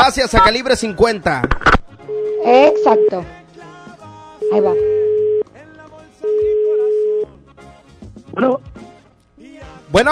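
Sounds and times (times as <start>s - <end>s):
busy music: 0.0s - 10.1s
speech: 0.1s - 3.4s, 4.5s - 5.0s, 8.4s - 8.8s, 9.9s - 10.1s
telephone ringback tone on a dialed call: 2.1s - 3.2s, 4.4s - 5.4s, 6.2s - 7.3s.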